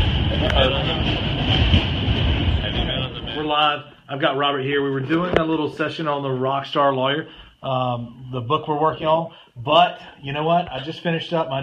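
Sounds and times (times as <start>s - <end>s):
subway train rumbling in a station: 0.0s - 3.5s
speech: 3.6s - 11.6s.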